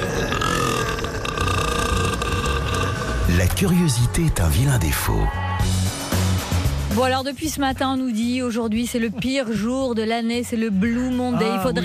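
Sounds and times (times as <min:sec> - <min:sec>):
long loud sustained croaking burp: 0:00.0 - 0:03.7
speech: 0:03.3 - 0:05.8, 0:07.0 - 0:11.8.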